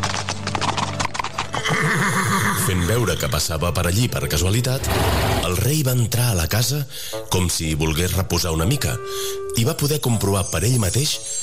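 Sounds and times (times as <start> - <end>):
hooves of a fast saddled horse clip-clopping as it is ridden: 0.0 - 2.7
speech: 2.7 - 11.3.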